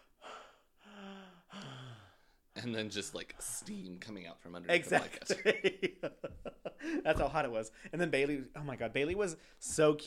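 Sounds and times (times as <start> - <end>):
person imitating gasping for air from under a hot blanket: 0.0 - 2.4
speech: 2.6 - 10.0.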